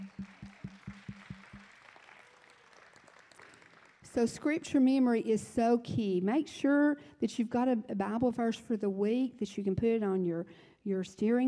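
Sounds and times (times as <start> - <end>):
audience applause: 0.0 - 4.2
speech: 4.2 - 11.4.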